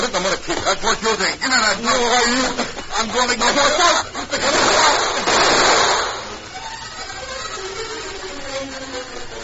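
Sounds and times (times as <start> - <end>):
speech: 0.1 - 4.6
gunshots from a silver-plated gun by a river: 4.4 - 6.4.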